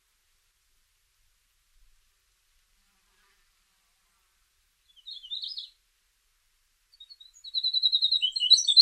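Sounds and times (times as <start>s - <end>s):
winter wren song: 4.8s - 5.8s, 6.9s - 8.8s.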